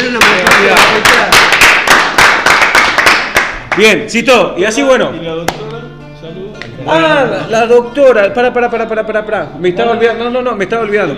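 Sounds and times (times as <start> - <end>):
group applauding: 0.0 - 4.0
speech: 3.8 - 5.6, 6.3 - 11.1.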